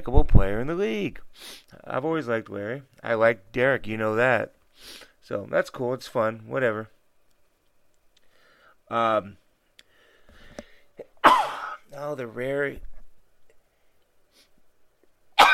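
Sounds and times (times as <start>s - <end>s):
speech: 0.0s - 7.0s, 8.9s - 9.4s, 12.0s - 12.9s
person sneezing: 11.2s - 11.9s.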